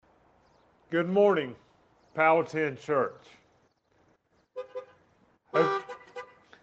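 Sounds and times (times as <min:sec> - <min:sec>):
speech: 0:00.9 - 0:03.4, 0:05.5 - 0:05.8
car horns honking: 0:04.6 - 0:06.6.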